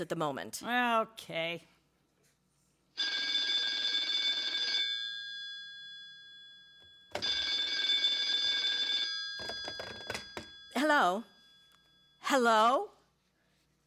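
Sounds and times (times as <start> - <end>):
speech: 0.0 - 1.7, 3.0 - 3.2, 10.8 - 11.3, 12.3 - 13.0
old-style telephone bell ringing: 3.0 - 12.3.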